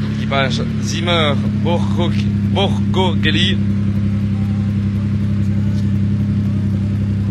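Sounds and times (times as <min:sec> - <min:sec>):
BMW rally car engine with sequential gearbox droning: 0:00.0 - 0:07.2
speech: 0:00.3 - 0:03.8.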